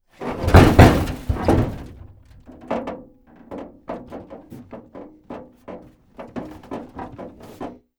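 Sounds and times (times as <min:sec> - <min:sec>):
vehicle door banging: 0:00.2 - 0:02.6.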